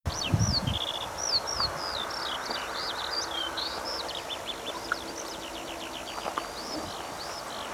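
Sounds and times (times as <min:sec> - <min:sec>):
Alauda arvensis skylark singing: 0:00.1 - 0:07.7.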